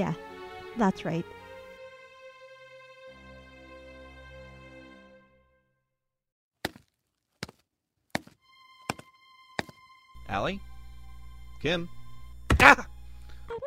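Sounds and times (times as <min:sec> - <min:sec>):
speech: 0:00.0 - 0:00.2, 0:00.8 - 0:01.4, 0:10.4 - 0:10.7, 0:11.6 - 0:12.0, 0:12.6 - 0:12.9
person tripping and falling with thunks and knocks: 0:06.6 - 0:09.8
sustained tonal hum: 0:10.2 - 0:13.6.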